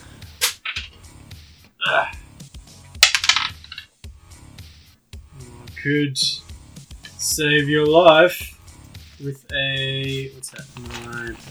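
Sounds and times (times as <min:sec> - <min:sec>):
dice clattering across a hard tabletop: 0:03.0 - 0:03.7
speech: 0:05.8 - 0:06.4, 0:07.2 - 0:08.5, 0:09.2 - 0:11.4.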